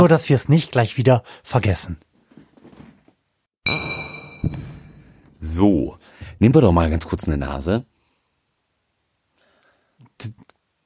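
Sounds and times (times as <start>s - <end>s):
speech: 0.0s - 2.1s, 5.5s - 7.9s, 10.2s - 10.4s
beer glasses clinking in a toast: 3.7s - 4.9s.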